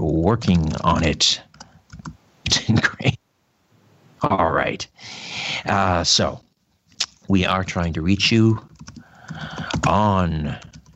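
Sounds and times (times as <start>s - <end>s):
speech: 0.2s - 1.5s, 2.5s - 3.2s, 4.2s - 6.4s, 7.3s - 8.7s, 9.3s - 10.7s
typing a message on a computer keyboard: 0.4s - 2.2s, 8.6s - 10.9s.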